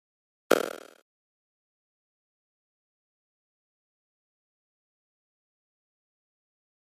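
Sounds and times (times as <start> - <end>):
pop up element rattle pop: 0.5 - 1.0.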